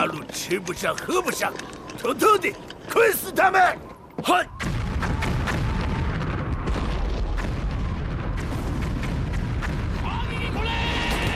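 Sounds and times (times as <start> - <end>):
speech: 0.1 - 5.2
artillery cannon fire shelling a village during wartime: 4.6 - 11.3
people shouting: 10.0 - 11.3.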